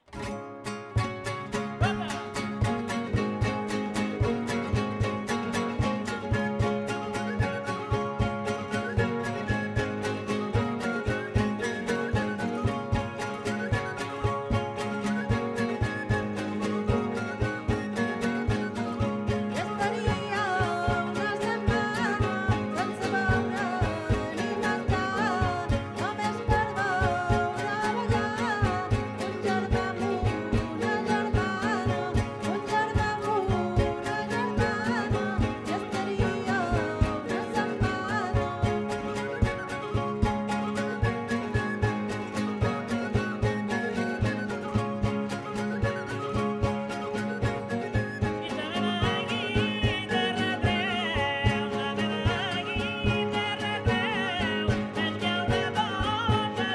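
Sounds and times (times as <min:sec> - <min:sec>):
folk dance tune on flabiol: 0:00.0 - 0:56.7.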